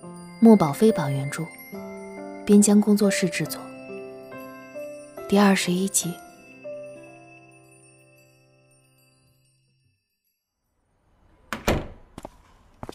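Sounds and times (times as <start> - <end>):
chime-like ringing tone: 0.0 - 10.8
speech: 0.4 - 1.6, 2.5 - 3.7, 5.3 - 6.2
door being closed: 11.4 - 12.6.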